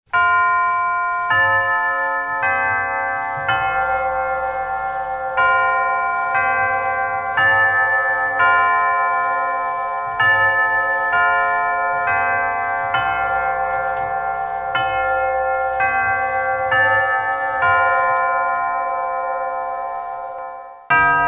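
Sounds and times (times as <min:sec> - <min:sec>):
clock tower chimes: 0:00.1 - 0:21.2.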